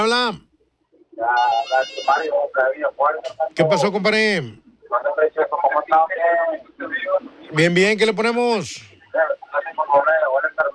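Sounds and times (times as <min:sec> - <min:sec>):
speech: 0:00.0 - 0:00.5, 0:01.2 - 0:10.7
phone ringtone for an incoming call: 0:01.4 - 0:02.4.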